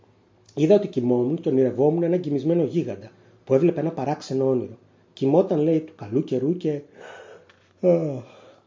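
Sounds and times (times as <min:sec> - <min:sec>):
speech: 0:00.6 - 0:07.2, 0:07.8 - 0:08.4
stifled yawn: 0:07.0 - 0:08.6.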